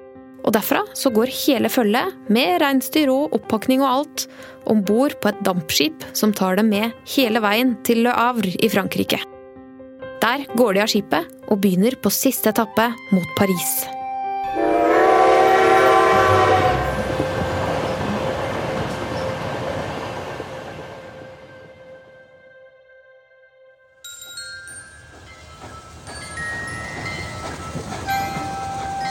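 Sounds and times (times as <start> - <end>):
speech: 0.4 - 9.3, 10.3 - 14.9
train rolling loudly along the rails: 14.6 - 21.9, 24.2 - 29.1.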